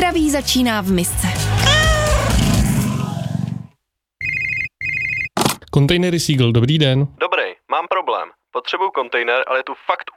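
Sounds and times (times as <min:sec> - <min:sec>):
speech: 0:00.1 - 0:01.4, 0:05.8 - 0:10.1
cat giving a long drawn-out meow: 0:01.5 - 0:02.7
electronic telephone ring: 0:04.2 - 0:05.4.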